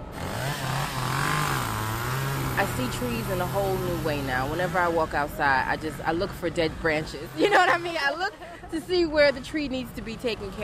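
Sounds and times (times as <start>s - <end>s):
chainsaw cutting wood: 0.0s - 8.0s
speech: 2.6s - 10.6s
laughter: 7.3s - 9.2s.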